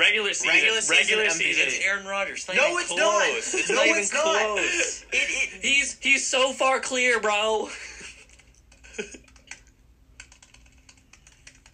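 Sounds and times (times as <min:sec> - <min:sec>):
speech: 0:00.0 - 0:08.0, 0:09.0 - 0:09.2
laughter: 0:02.6 - 0:05.6
rapid forceful angry keyboard typing: 0:08.2 - 0:11.7.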